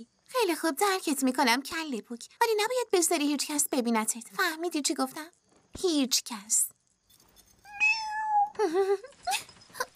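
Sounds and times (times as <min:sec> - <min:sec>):
speech: 0:00.0 - 0:06.8, 0:08.6 - 0:09.5
cat meowing: 0:07.7 - 0:08.6.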